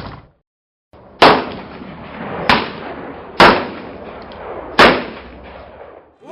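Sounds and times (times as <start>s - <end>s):
pistol shots fired at a raised shooting target: 1.2s - 1.8s, 2.5s - 5.9s.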